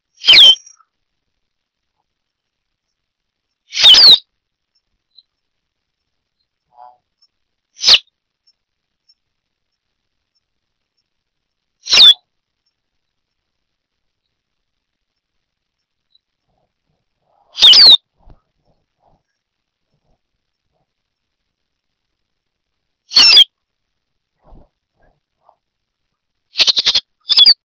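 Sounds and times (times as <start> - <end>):
Sporophila bouvreuil singing: 0.1 - 0.9, 3.7 - 5.4, 6.4 - 9.2, 11.8 - 12.8, 16.1 - 19.2, 23.1 - 23.5, 26.6 - 27.6.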